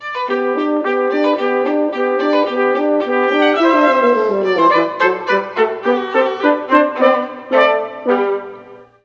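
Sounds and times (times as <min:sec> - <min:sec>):
trumpet: 0:00.0 - 0:09.0
viola: 0:00.0 - 0:09.0
french horn: 0:00.4 - 0:09.0.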